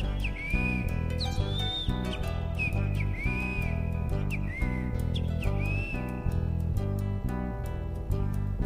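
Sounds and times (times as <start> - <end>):
great kiskadee calling: 0.0 - 6.1
rhythmic folk music with strummed and percussive accompaniment: 0.0 - 8.6.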